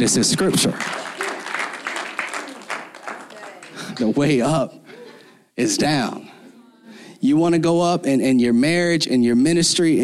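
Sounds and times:
speech: 0.0 - 1.1, 4.0 - 4.8, 5.6 - 6.3, 7.2 - 10.0
audience applauding with many hands clapping: 0.0 - 4.4.

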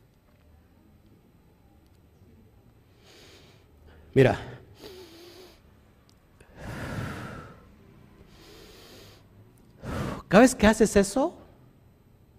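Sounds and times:
slow deep breaths in and out: 2.9 - 5.7, 6.4 - 10.3
speech: 4.2 - 4.5, 10.3 - 11.4.

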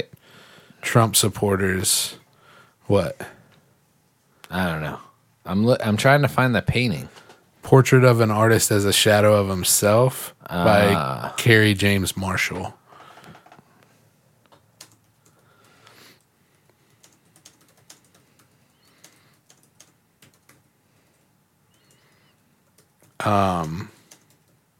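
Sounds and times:
speech: 0.9 - 2.2, 2.9 - 3.4, 4.5 - 12.8, 23.2 - 23.9
voice-like burst: 10.6 - 11.3
fingers typing on a computer keyboard: 14.5 - 24.7.

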